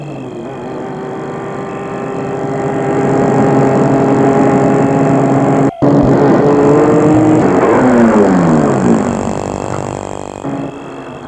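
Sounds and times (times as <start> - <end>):
car engine approaching and slowing to a stop: 0.0 - 11.2.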